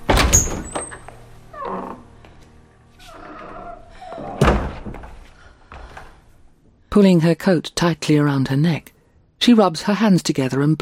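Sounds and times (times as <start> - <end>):
pair of double doors banging shut: 0.0 - 1.1, 4.2 - 5.2
double doors rattling and creaking: 0.0 - 2.1, 3.1 - 5.3
speech: 7.0 - 10.8.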